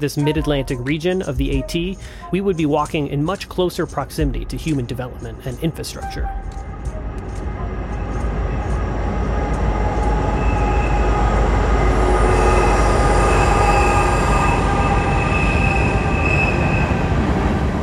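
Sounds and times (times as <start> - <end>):
speech: 0.0 - 7.0
train rumbling past a tent site on a railroad line at night: 6.6 - 17.8
high metallic train wheel squeals: 9.8 - 17.0.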